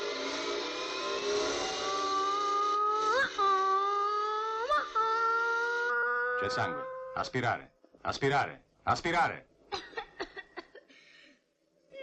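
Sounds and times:
electric surgical drill running during an operation: 0.0 - 6.0
speech: 6.4 - 9.5.

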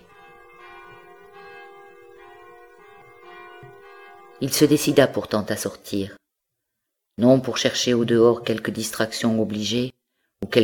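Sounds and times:
church bells pealing on a grey November day: 0.0 - 5.9
speech: 4.4 - 6.2, 7.2 - 10.6.

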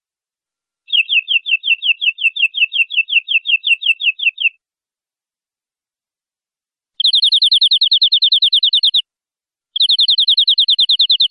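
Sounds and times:
canary singing: 0.9 - 4.6, 7.0 - 9.0, 9.8 - 11.3.

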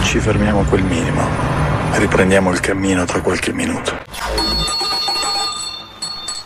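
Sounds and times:
speech: 0.1 - 4.2
bicycle bell ringing: 4.4 - 6.4.

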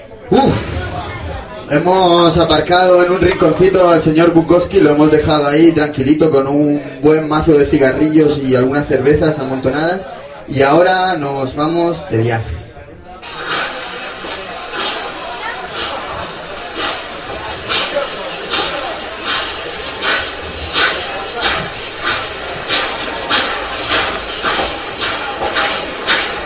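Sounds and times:
steam train chuffing: 0.0 - 26.4
speech: 0.3 - 0.7, 1.7 - 12.6.

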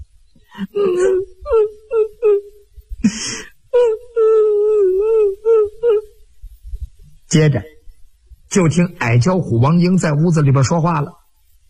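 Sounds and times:
voice imitating a woman crying in a room: 0.5 - 6.2
speech: 0.6 - 1.7, 7.3 - 7.8, 8.5 - 11.2.

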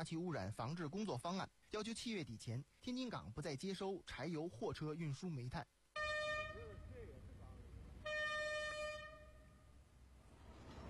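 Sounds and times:
speech: 0.0 - 5.7
loaded coal train horn arriving at a port terminal: 6.0 - 6.9, 8.0 - 9.7.

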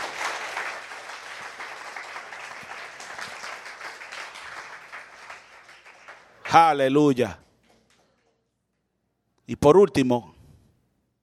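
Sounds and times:
church congregation applauding: 0.0 - 8.2
speech: 6.5 - 7.4, 9.5 - 10.3.

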